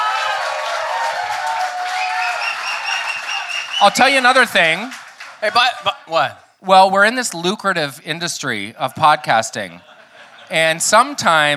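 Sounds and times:
crowd cheering and whooping: 0.0 - 4.5
crowd applauding: 0.0 - 6.4
speech: 3.8 - 9.9, 10.5 - 11.5
laughter: 8.8 - 11.5.

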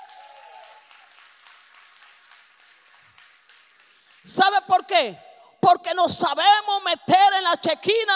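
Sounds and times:
audience applauding: 0.0 - 4.4
speech: 4.2 - 8.1.

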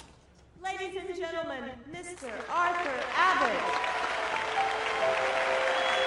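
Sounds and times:
speech: 0.8 - 4.0
full crowd applauding: 2.3 - 6.0.

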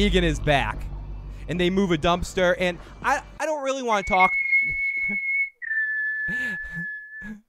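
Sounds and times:
speech: 0.0 - 0.9, 1.5 - 5.2
clear high whistled melody of long held notes: 4.0 - 7.4.

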